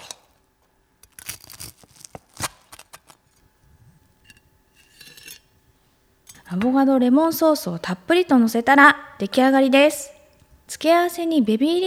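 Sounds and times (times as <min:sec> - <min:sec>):
knife cutting through a crispy fried chicken cutlet: 0:01.0 - 0:03.3
speech: 0:06.5 - 0:10.2, 0:10.8 - 0:11.8.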